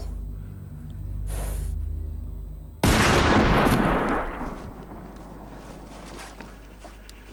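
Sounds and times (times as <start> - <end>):
low rumbling: 0.0 - 7.3
burst of gunfire with sharp blasts: 2.8 - 6.9.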